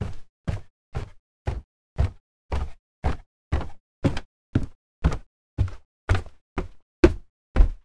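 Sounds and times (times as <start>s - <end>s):
footsteps descending stairs in a house: 0.0s - 7.8s.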